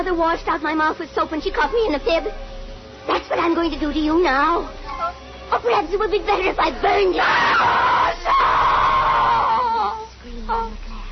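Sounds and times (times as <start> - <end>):
speech: 0.0 - 2.5, 3.1 - 8.3
woman screaming high-pitched: 7.1 - 10.1
woman wailing cries: 7.2 - 10.7.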